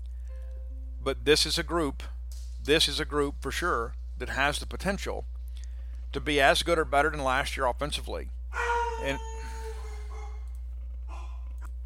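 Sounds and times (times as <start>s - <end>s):
low hum: 0.0s - 11.8s
speech: 1.0s - 5.3s, 6.1s - 9.3s
dogs barking: 8.5s - 10.5s, 11.1s - 11.4s.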